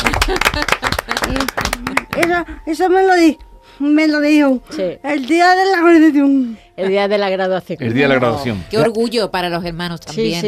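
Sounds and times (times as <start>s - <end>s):
applause: 0.0s - 2.4s
speech: 2.4s - 10.4s.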